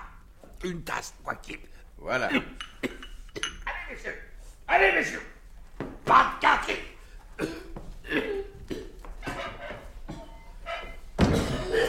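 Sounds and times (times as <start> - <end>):
speech: 0.6 - 3.0, 3.9 - 5.3
man coughing harshly: 2.3 - 3.6, 7.4 - 10.4, 11.2 - 11.8.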